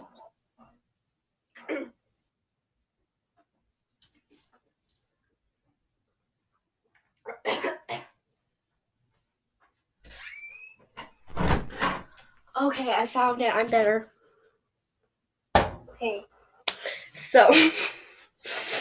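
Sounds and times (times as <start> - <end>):
harsh coughing: 1.6 - 2.0, 7.3 - 8.2
speech: 12.7 - 14.1, 16.0 - 16.3, 17.2 - 18.0
wheezy strained intake of breath: 16.8 - 18.7.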